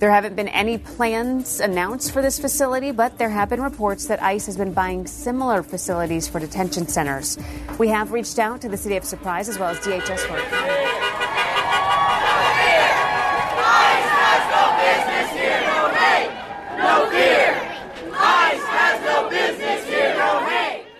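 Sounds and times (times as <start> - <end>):
speech: 0.0 - 11.0
large crowd of hundreds shouting and chanting outside city hall: 10.1 - 20.9.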